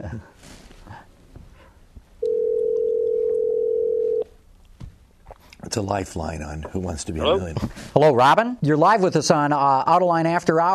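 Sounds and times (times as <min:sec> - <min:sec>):
speech: 0:00.1 - 0:00.4, 0:05.8 - 0:10.7
Skype call electronic dialing tone: 0:02.2 - 0:04.3.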